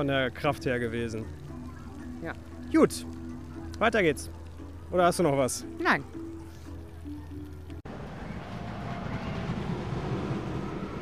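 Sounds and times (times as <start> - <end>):
speech: 0.0 - 1.4, 2.2 - 3.2, 3.8 - 6.3
low humming: 0.0 - 10.9
wooden roller coaster ride running: 7.9 - 10.9.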